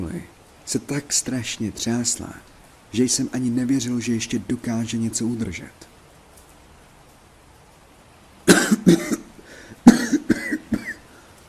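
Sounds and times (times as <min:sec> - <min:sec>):
speech: 0:00.0 - 0:06.0
injured man coughing harshly: 0:08.5 - 0:11.1.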